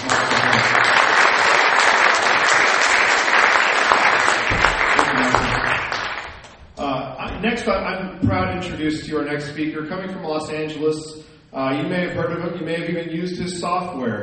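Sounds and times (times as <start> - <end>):
crowd applause: 0.0 - 6.6
speech: 7.6 - 14.2.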